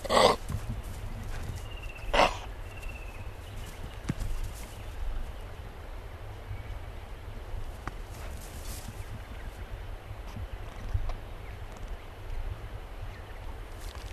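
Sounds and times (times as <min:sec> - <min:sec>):
Eastern grey kangaroo grunts: 0:00.0 - 0:02.6
low background rumble: 0:00.0 - 0:14.1.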